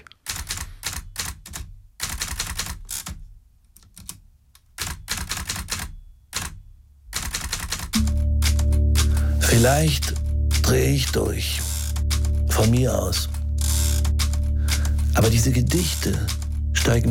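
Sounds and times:
mechanical typewriter being typed on at the start of a concert: 0.0s - 3.2s, 4.8s - 17.0s
steady low tone: 8.0s - 17.0s
speech: 9.5s - 11.7s, 12.6s - 13.4s, 15.2s - 17.0s.

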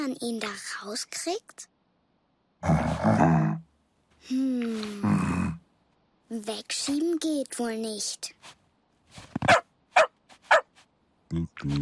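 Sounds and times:
speech: 0.1s - 1.7s, 2.6s - 3.6s, 4.2s - 5.6s, 6.3s - 8.6s, 9.2s - 10.6s, 11.3s - 11.8s
dog barking with softer yips: 9.5s - 10.7s.

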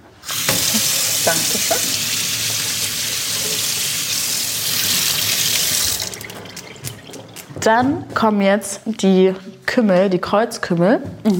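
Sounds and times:
water running from a kitchen tap while washing hands: 0.1s - 7.6s
speech: 1.2s - 2.0s, 7.6s - 11.3s.

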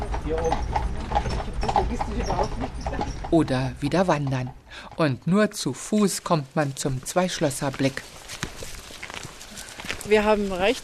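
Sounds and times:
horse hooves of a horse-drawn carriage clip-clopping: 0.0s - 10.8s
speech: 0.2s - 8.6s, 10.1s - 10.8s.

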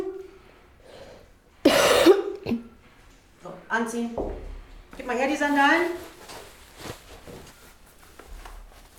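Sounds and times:
soft catch of breath: 0.8s - 1.4s
person coughing on command while bent forward: 1.6s - 2.7s
speech: 3.8s - 4.4s, 5.0s - 6.1s.

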